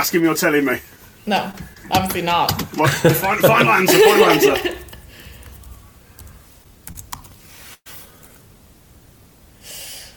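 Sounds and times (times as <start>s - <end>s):
speech: 0.0s - 4.8s
faint hiss of room noise: 0.0s - 10.1s
typing on a laptop keyboard: 1.5s - 3.9s, 4.7s - 7.7s
laughter: 1.8s - 5.4s.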